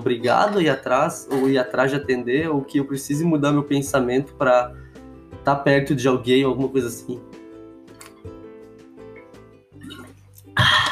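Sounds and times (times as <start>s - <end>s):
speech: 0.1s - 4.8s, 5.4s - 7.4s
person sipping water: 9.1s - 10.8s
soft swallowing: 9.8s - 10.8s.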